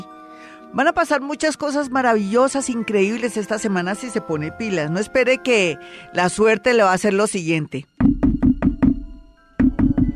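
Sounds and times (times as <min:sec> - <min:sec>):
speech: 0:00.7 - 0:08.2
solid knocking on a door: 0:08.0 - 0:10.1.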